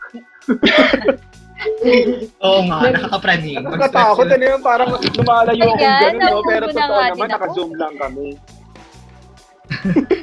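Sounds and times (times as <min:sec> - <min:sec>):
laughter: 0:00.0 - 0:07.1, 0:09.7 - 0:10.2
speech: 0:00.1 - 0:08.6, 0:09.7 - 0:10.2
harsh raspy cough: 0:00.5 - 0:01.2.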